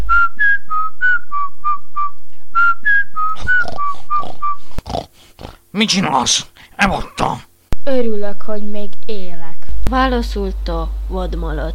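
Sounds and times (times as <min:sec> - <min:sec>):
person whistling a simple tune: 0:00.0 - 0:04.7
speech: 0:05.8 - 0:11.7.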